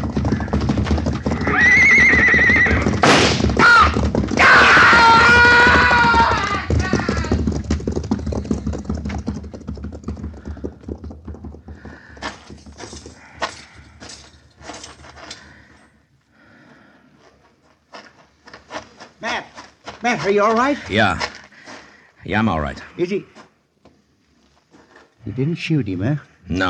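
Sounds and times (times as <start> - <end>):
horse hooves galloping: 0.0 - 15.8, 17.1 - 23.5
horse whinnying: 0.3 - 7.5
speech: 20.2 - 21.3, 22.2 - 23.3, 25.3 - 26.6.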